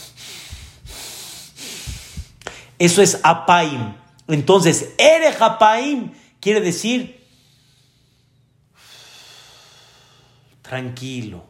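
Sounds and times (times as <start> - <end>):
angry heavy breathing through the nose: 0.0 - 2.8, 7.2 - 10.6
speech: 2.8 - 7.2, 10.7 - 11.4.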